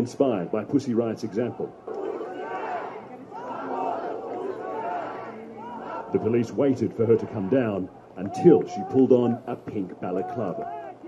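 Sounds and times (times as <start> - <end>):
speech: 0.0 - 2.0, 6.1 - 10.8
angry crowd shouting and jeering outside courthouse: 1.4 - 9.3, 10.1 - 11.0.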